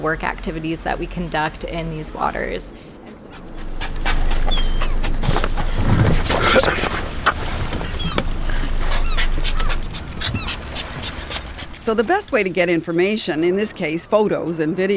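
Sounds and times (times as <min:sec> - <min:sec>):
speech: 0:00.0 - 0:03.5, 0:06.5 - 0:07.0, 0:11.9 - 0:14.9
low engine-like rumble: 0:00.0 - 0:14.9
group of hungry sea lions barking and huffing in a feeding frenzy: 0:02.9 - 0:12.5.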